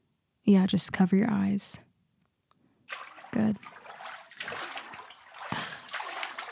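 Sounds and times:
speech: 0.4 - 1.9, 3.3 - 3.8
water rinsing a person's hair as their head leans back: 2.9 - 6.4.

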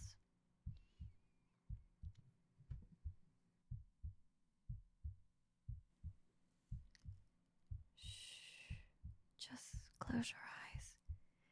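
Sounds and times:
slow steady heartbeat in soft paired beats: 0.0 - 11.4
breathy whispery rustling: 8.0 - 11.0.

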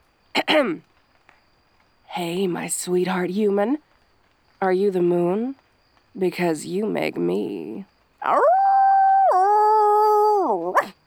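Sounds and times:
speech: 0.4 - 0.9, 2.2 - 3.9, 4.6 - 8.6
human voice imitating a dog or wolf howl: 8.2 - 10.9.

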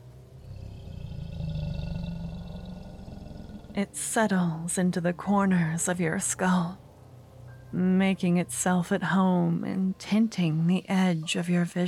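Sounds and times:
deep growling echoing monstrous roar: 0.4 - 3.8
speech: 3.8 - 6.8, 7.7 - 11.8.

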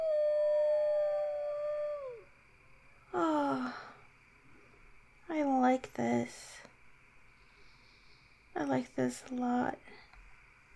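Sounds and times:
animals howling: 0.0 - 2.3
speech: 5.7 - 6.5, 8.7 - 10.0.

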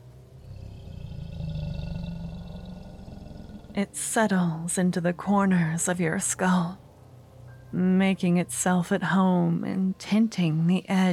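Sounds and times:
deep rumbling monstrous roar with growling texture: 0.4 - 3.8
speech: 3.8 - 6.8, 7.7 - 11.1.

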